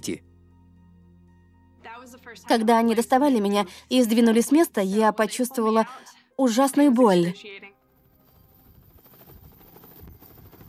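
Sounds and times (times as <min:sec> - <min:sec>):
speech: 0:00.0 - 0:00.3, 0:02.0 - 0:07.7
helicopter rotor chopping while landing at a hospital: 0:07.8 - 0:10.6.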